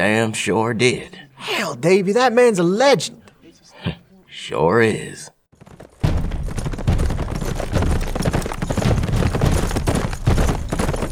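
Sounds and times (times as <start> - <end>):
speech: 0.0 - 3.2, 3.8 - 5.4
hooves of horses ridden into a tiny Old West town: 5.6 - 11.0.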